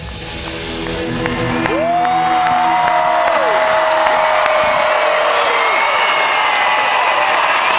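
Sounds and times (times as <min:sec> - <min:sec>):
concert crowd applause: 0:00.0 - 0:07.7
large concert crowd cheering: 0:01.2 - 0:07.7
crowd whistles: 0:05.5 - 0:07.1.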